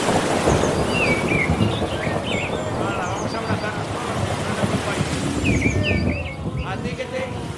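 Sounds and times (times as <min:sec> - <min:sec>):
rain hissing: 0:00.0 - 0:07.5
thunder rumbling: 0:00.0 - 0:07.5
birds chirping: 0:00.3 - 0:07.2.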